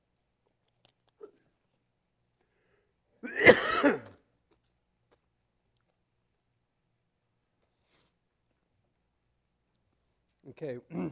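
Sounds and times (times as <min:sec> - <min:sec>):
harsh raspy coughing: 0:03.2 - 0:04.1, 0:10.9 - 0:11.1
throat clearing: 0:03.2 - 0:04.2, 0:10.9 - 0:11.1
speech: 0:10.5 - 0:11.1.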